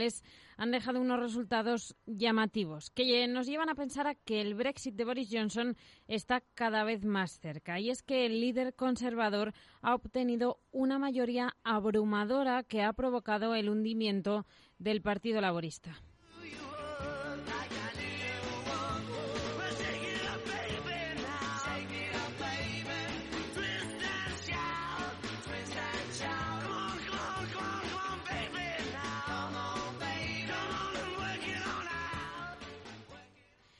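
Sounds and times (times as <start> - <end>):
speech: 0.0 - 16.7
loud energetic rock and roll song with shouted vocals: 16.3 - 33.5.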